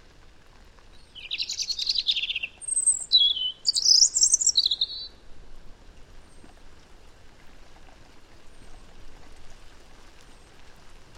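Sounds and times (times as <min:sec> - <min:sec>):
European robin Erithacus rubecula singing: 0:00.9 - 0:05.2.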